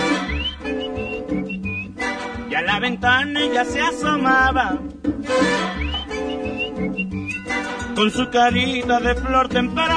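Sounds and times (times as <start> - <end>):
person whistling: 0.0 - 2.0, 5.6 - 7.6
music backing with steady bass: 0.0 - 9.9
speech: 2.6 - 5.9, 8.0 - 9.9.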